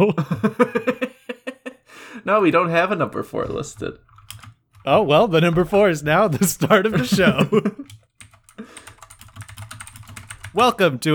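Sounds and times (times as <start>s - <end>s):
speech: 0.0s - 0.9s, 2.2s - 4.1s, 4.8s - 7.8s, 10.6s - 11.1s
laughter: 0.0s - 1.9s, 5.3s - 8.0s
several computer keyboards clattering: 3.2s - 11.1s.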